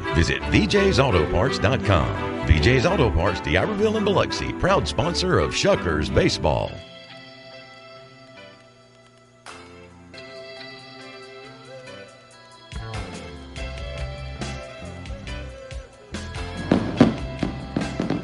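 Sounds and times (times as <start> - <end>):
speech: 0.2 - 6.9
fireworks finale bursting and crackling at a ballpark: 16.5 - 18.2.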